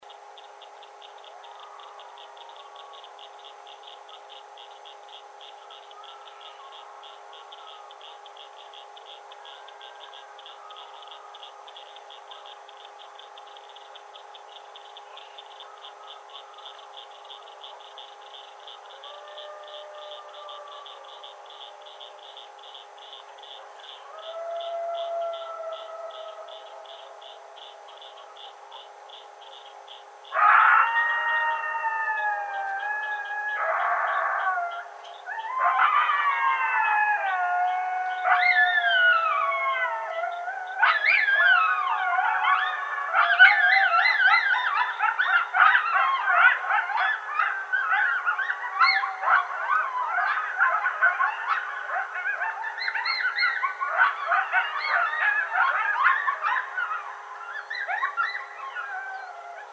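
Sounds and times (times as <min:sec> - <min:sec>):
coyote Canis latrans howling: 0:23.1 - 0:28.1, 0:30.3 - 0:59.7.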